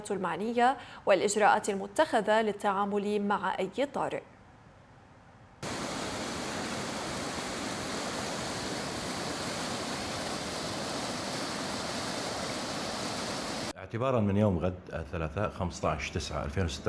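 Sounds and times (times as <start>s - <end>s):
speech: 0.0s - 4.3s, 13.9s - 16.8s
flowing water of the Euphrates River at high water in Deir ez-Zor Syria: 5.6s - 13.7s.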